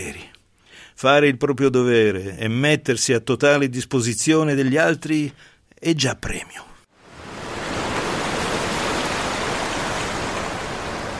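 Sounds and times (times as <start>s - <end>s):
speech: 1.0s - 6.7s
wave of water splashing: 7.0s - 11.1s.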